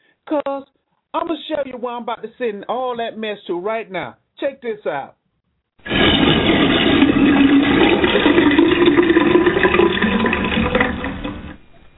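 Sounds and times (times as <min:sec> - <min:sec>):
speech: 0:00.3 - 0:05.2
toilet flushing: 0:05.8 - 0:11.6.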